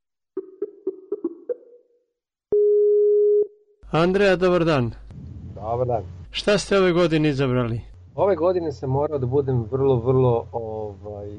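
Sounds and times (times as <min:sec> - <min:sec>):
loud steady telephone tone: 0:02.5 - 0:03.7
speech: 0:03.9 - 0:05.0, 0:05.7 - 0:11.3.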